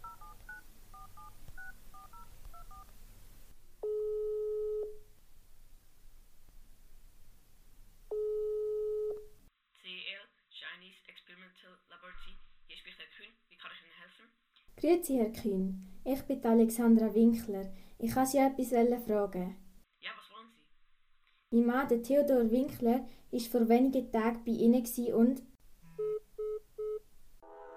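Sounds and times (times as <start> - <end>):
long steady telephone ringing tones: 0.0 - 2.8, 3.8 - 5.0, 8.1 - 9.2
keypad dialing beeps: 0.0 - 2.9
speech: 14.8 - 19.6, 21.6 - 25.5.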